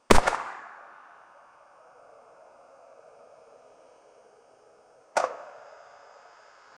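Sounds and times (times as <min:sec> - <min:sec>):
AK47 rifle shooting: 0:00.1 - 0:01.3.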